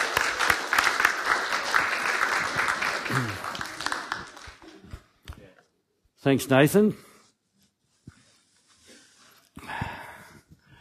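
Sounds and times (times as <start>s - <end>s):
crowd clapping: 0.0s - 5.1s
speech: 6.2s - 7.0s.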